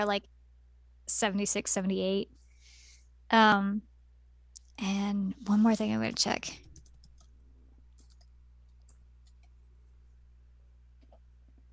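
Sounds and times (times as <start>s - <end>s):
speech: 0.0s - 0.4s, 1.1s - 2.4s, 3.3s - 3.9s, 4.8s - 6.7s
steady low electrical hum: 0.0s - 11.7s
fast keyboard typing: 5.6s - 9.6s.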